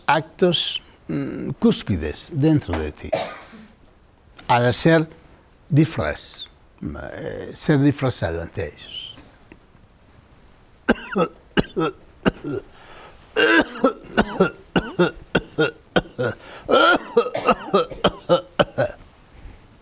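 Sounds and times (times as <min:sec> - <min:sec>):
speech: 0:00.1 - 0:03.4, 0:04.5 - 0:09.0, 0:11.1 - 0:12.9, 0:14.4 - 0:18.4
person clearing throat: 0:03.1 - 0:03.7, 0:10.9 - 0:12.7, 0:13.4 - 0:19.0
person coughing: 0:03.1 - 0:03.7, 0:10.9 - 0:12.7, 0:13.4 - 0:19.0.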